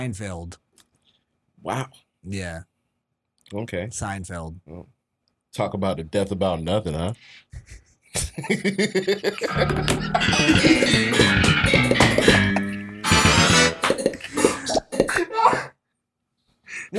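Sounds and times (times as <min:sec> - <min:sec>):
speech: 0:00.0 - 0:00.6, 0:01.6 - 0:02.7, 0:03.5 - 0:12.4
heavy harsh coughing fits: 0:07.6 - 0:11.4, 0:13.8 - 0:15.7
laughter: 0:07.6 - 0:15.3.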